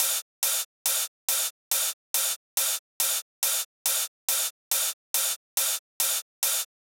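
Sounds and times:
drum loop with ride cymbal: 0:00.0 - 0:06.8.

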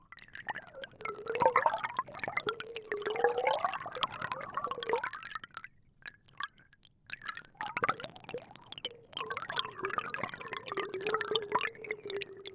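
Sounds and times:
underwater gargle recorded by hydrophone: 0:00.5 - 0:05.2, 0:07.6 - 0:12.5.

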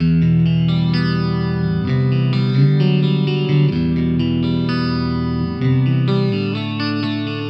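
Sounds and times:
electric pop guitar in E minor: 0:00.0 - 0:07.4.

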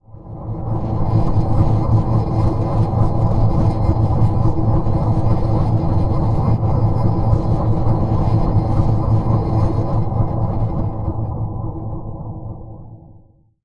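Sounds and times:
tomb drone: 0:00.0 - 0:13.3.

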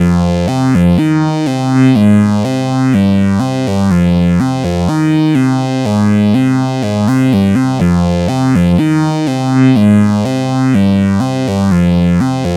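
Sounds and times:
trip-hop synth loop: 0:00.1 - 0:12.5.

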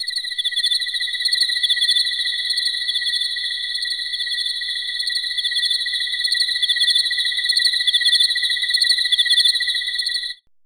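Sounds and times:
crickets chirping: 0:00.0 - 0:10.4.

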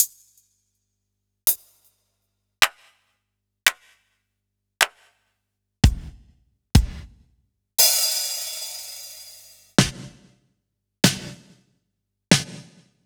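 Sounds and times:
sliced electro drum kit: 0:05.9 - 0:06.2, 0:06.8 - 0:07.1, 0:07.8 - 0:10.1.

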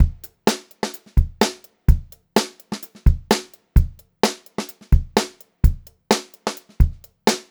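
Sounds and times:
funky beat funk groove drum loop: 0:00.0 - 0:07.4.

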